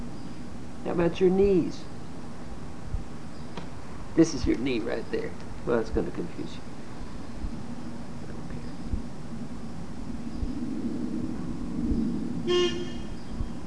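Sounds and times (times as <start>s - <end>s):
steady rumble of passing traffic: 0.0s - 13.6s
speech: 1.0s - 1.9s, 4.2s - 6.7s
single short car horn toot: 12.5s - 13.1s.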